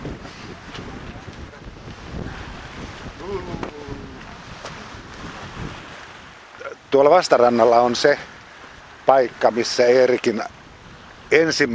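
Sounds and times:
cold wind buffeting microphone on a lakeside shore: 0:00.0 - 0:11.7
faint lapping of lake water: 0:00.0 - 0:11.7
speech: 0:06.9 - 0:08.3, 0:09.1 - 0:10.6, 0:11.3 - 0:11.7.

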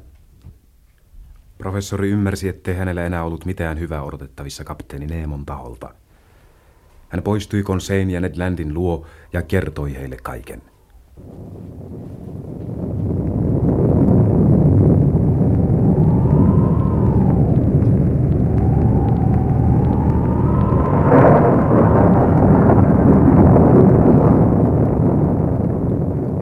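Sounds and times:
speech: 0:01.6 - 0:06.0, 0:07.1 - 0:11.5
dense rushing storm wind: 0:11.0 - 0:26.4
rough heaving sea: 0:11.2 - 0:26.4
rumbling low thunder: 0:11.2 - 0:26.4.

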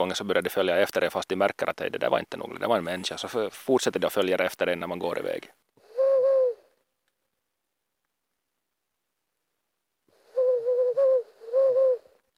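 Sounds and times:
speech: 0:00.0 - 0:05.6
distant Ural owl hooting: 0:05.8 - 0:06.7, 0:10.2 - 0:12.2.

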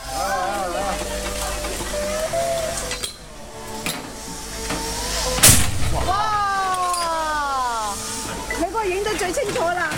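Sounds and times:
people talking and calling out outdoors: 0:00.0 - 0:09.9
rush of hissing steam from popcorn cannon: 0:00.0 - 0:09.9
pressurized popcorn cannon bursting open with a boom: 0:05.4 - 0:06.4.

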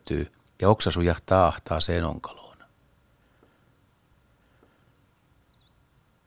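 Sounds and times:
speech: 0:00.1 - 0:02.4
Eurasian treecreeper calling: 0:03.2 - 0:05.8.

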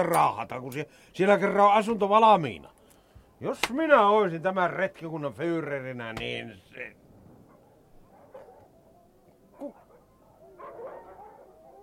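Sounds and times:
speech: 0:00.0 - 0:02.8, 0:03.4 - 0:07.0, 0:09.6 - 0:09.8
steady hiss: 0:00.0 - 0:10.7
faint dog barks: 0:07.4 - 0:11.8.

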